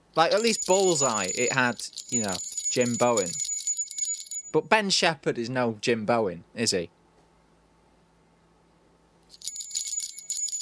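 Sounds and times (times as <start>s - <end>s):
speech: 0.2s - 3.5s, 4.5s - 7.0s
bell ringing: 0.3s - 4.6s, 9.4s - 10.6s.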